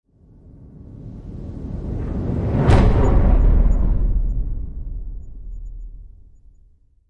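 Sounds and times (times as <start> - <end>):
swoosh: 0.2 - 6.6
planet thunder: 0.6 - 6.4
hit: 2.0 - 6.2.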